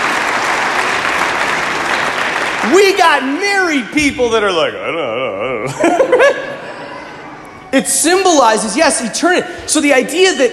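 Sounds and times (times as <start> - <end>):
audience applause for a child: 0.0 - 3.8
speech: 2.6 - 6.5, 7.7 - 10.5
laughter: 4.8 - 7.4.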